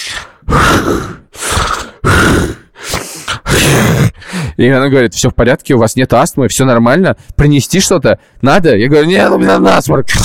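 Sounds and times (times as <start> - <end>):
person imitating desperate gasping for air: 0.0 - 4.6
speech: 4.6 - 10.2.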